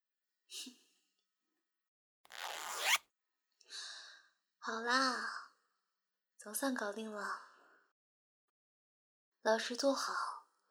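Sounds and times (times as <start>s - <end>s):
clothing zipper being pulled: 2.3s - 3.0s
speech: 4.7s - 5.4s, 6.4s - 7.5s, 9.4s - 10.3s.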